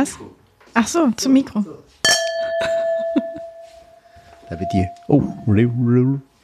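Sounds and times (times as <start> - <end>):
speech: 0.0 - 2.2, 4.5 - 6.3
wine glasses clinking in a toast: 2.0 - 6.0
laughter: 2.5 - 3.6.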